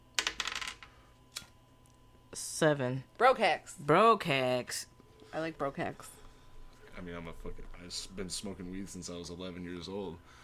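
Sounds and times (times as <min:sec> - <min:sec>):
dice rolling on a hard table: 0:00.2 - 0:01.0
speech: 0:02.4 - 0:06.2, 0:07.0 - 0:10.4.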